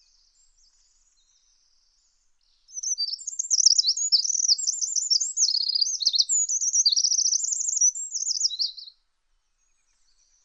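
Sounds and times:
bird twittering: 0:02.8 - 0:08.9.

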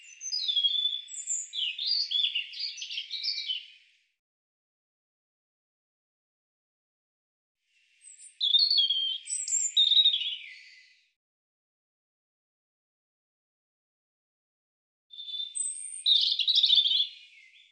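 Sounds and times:
European robin singing: 0:00.0 - 0:03.8, 0:08.0 - 0:11.1, 0:15.1 - 0:17.7.

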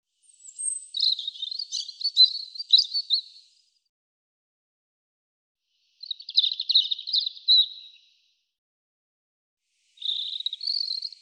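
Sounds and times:
European robin singing: 0:00.2 - 0:03.7, 0:06.0 - 0:08.2, 0:10.0 - 0:11.1.

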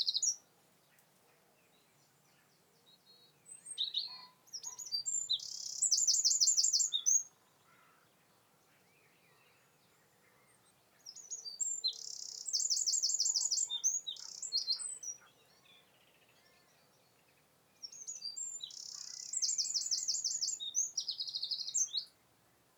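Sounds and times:
Eurasian wren Troglodytes troglodytes singing: 0:00.0 - 0:00.4, 0:03.6 - 0:07.4, 0:11.0 - 0:16.4, 0:17.8 - 0:22.2.

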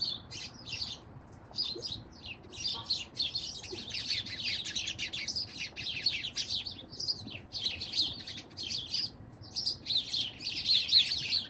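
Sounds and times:
birds chirping and twittering: 0:00.0 - 0:11.4.

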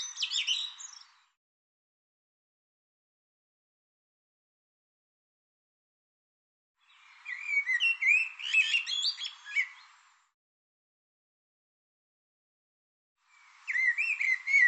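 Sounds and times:
bird song: 0:00.0 - 0:01.4, 0:06.8 - 0:10.3, 0:13.2 - 0:14.6.

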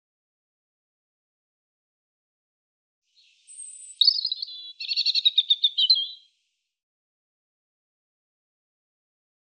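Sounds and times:
European robin singing: 0:03.1 - 0:06.4.

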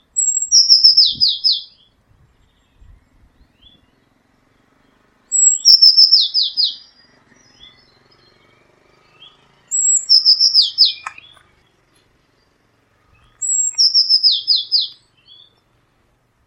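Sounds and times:
Eurasian blue tit calls: 0:00.0 - 0:02.6, 0:03.4 - 0:15.7.

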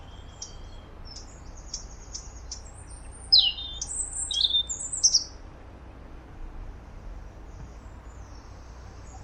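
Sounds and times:
European robin singing: 0:00.0 - 0:05.4, 0:07.4 - 0:09.2
soft low background noise: 0:00.0 - 0:09.2.

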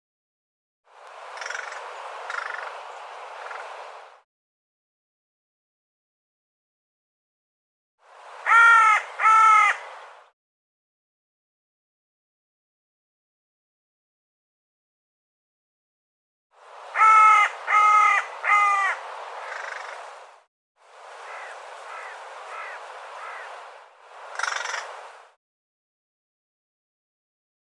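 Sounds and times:
bird giving loud harsh harmonic caws: 0:01.3 - 0:02.8, 0:03.4 - 0:03.7, 0:08.4 - 0:09.9, 0:16.9 - 0:20.1, 0:21.2 - 0:23.6, 0:24.3 - 0:25.0.

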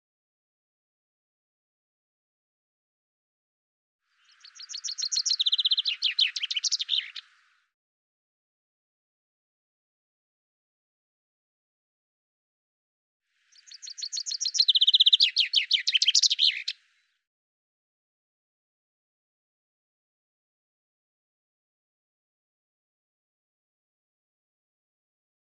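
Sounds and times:
Common chaffinch singing: 0:04.2 - 0:07.5, 0:13.5 - 0:17.0.

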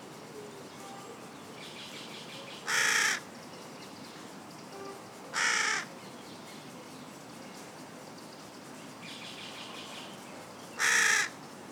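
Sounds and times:
carrion crow Corvus corone harsh caw: 0:02.7 - 0:03.2, 0:05.4 - 0:05.9, 0:10.8 - 0:11.4.

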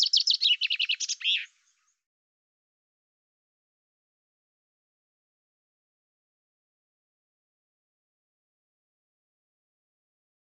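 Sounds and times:
common chaffinch singing sharp descending notes with slurred end phrase: 0:00.0 - 0:02.0.

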